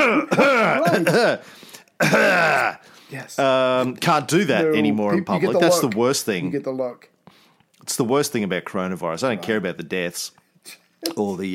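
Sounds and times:
person clearing throat: 0.0 - 1.4, 2.0 - 2.8
speech: 0.2 - 7.2, 7.8 - 11.5.

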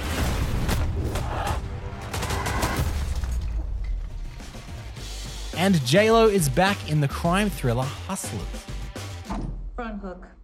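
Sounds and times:
gunshots in rapid bursts in an action film trailer: 0.0 - 3.1
speech: 5.6 - 8.7, 9.8 - 10.4.

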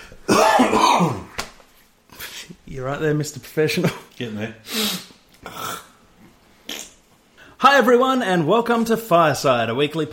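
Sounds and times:
person coughing: 0.3 - 1.4
speech: 2.8 - 5.6, 7.6 - 10.1.

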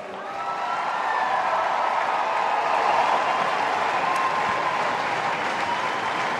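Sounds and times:
large crowd applauding for the runners-up: 0.0 - 6.3.

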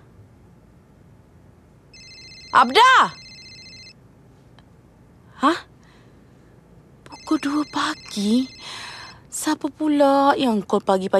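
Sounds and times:
telephone ringing with a steady electronic ringtone: 1.9 - 4.0, 7.1 - 9.2
speech: 2.5 - 3.2, 5.4 - 5.7, 7.4 - 8.6, 9.4 - 11.1.

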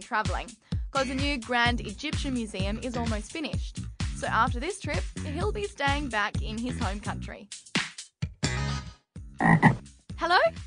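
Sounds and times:
speech: 0.0 - 7.7, 9.4 - 10.6
frog croaking: 9.4 - 9.8.

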